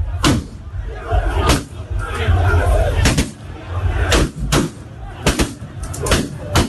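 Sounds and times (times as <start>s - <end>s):
agitated crowd of protesting supporters roaring and shouting at an election collation centre: 0.0s - 6.6s
gunshots from police and military: 0.1s - 0.7s, 3.0s - 6.6s.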